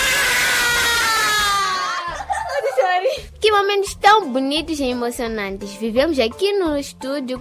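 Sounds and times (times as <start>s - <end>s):
group of children shouting a cheer together: 0.0s - 2.4s
laughter: 1.5s - 3.2s
speech: 3.5s - 7.4s.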